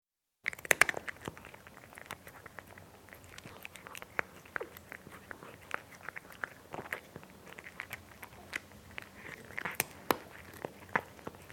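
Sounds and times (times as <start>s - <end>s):
domestic cat eating dry food: 0.4s - 11.5s.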